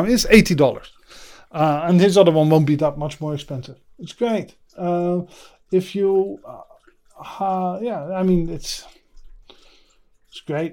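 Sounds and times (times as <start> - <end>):
speech: 0.0 - 9.0, 10.3 - 10.7
pet lapping water: 0.0 - 10.7.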